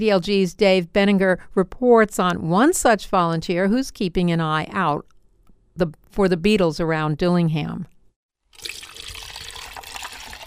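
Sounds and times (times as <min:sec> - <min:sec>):
speech: 0:00.0 - 0:05.1, 0:05.8 - 0:07.9
non-toxic liquid antifreeze pouring into an insect collection jar: 0:08.5 - 0:10.4.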